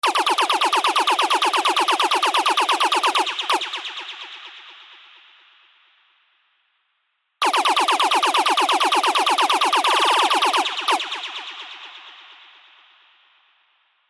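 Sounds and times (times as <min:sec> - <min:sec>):
wet laser shots: 0:00.0 - 0:04.4, 0:07.4 - 0:12.1.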